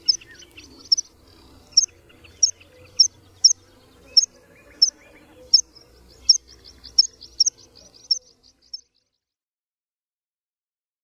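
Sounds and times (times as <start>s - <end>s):
meadow pipit calls: 0.0s - 8.3s.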